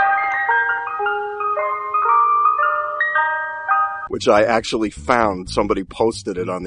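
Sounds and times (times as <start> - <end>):
tinkly music-box style ice cream truck jingle as played in New York: 0.0 - 4.1
speech: 4.1 - 6.6.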